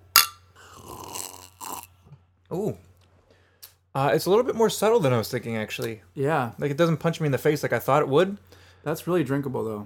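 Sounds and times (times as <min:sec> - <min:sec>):
glasses clinking in a toast: 0:00.2 - 0:00.5
speech: 0:02.5 - 0:02.9, 0:03.9 - 0:09.8.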